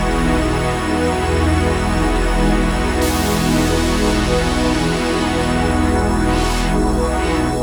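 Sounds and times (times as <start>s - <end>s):
Roland JX-1 synthesizer dual patches: 0.1s - 7.6s.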